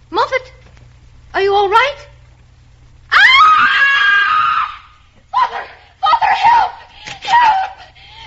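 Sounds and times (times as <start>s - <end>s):
speech: 1.5s - 2.0s
woman screaming: 3.1s - 7.9s.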